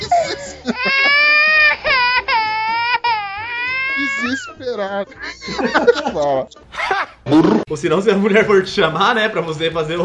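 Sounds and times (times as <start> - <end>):
laughter: 0.0 - 2.2, 3.8 - 7.6
voice imitating a man crying and sobbing: 3.7 - 5.0
speech: 4.8 - 6.6, 7.3 - 10.0.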